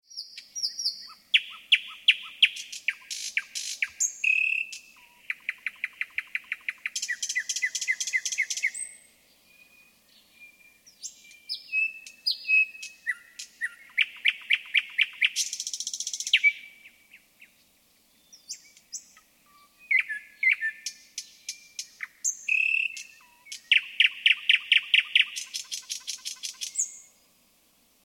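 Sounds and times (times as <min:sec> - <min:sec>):
thrush nightingale singing: 0:00.0 - 0:27.3.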